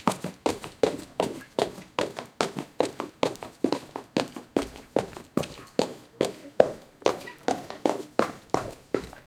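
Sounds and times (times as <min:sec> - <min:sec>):
light running footsteps: 0:00.0 - 0:09.3.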